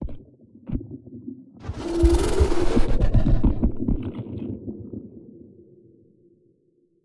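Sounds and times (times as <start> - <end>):
space dragon idling: 1.6 - 3.9.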